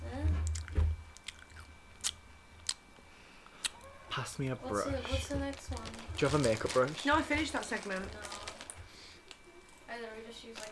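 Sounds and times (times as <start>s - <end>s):
faint hum: 0.0s - 10.7s
wet munching with crunchy bites: 0.4s - 2.9s
speech: 4.2s - 8.4s, 10.3s - 10.7s.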